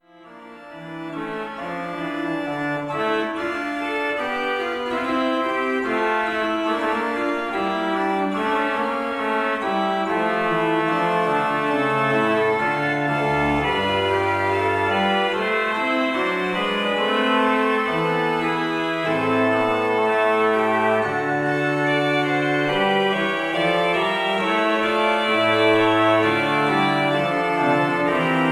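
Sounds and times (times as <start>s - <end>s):
Prengel 14 II P pipe organ playing: 0.1s - 28.5s.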